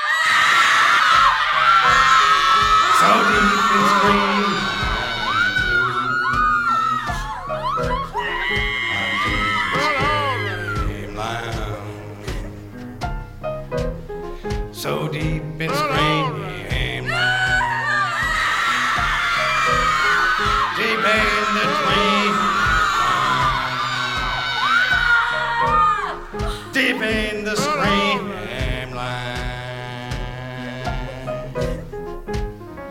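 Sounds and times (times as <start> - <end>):
people screaming and whooping: 0.0 - 11.2, 17.0 - 26.4
steady low musical backing: 1.3 - 32.8.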